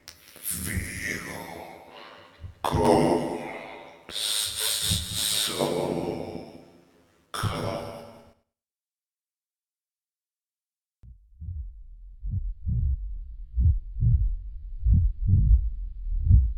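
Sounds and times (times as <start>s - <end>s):
person speaking: 0.0s - 8.3s
heartbeat thumping: 11.0s - 16.5s.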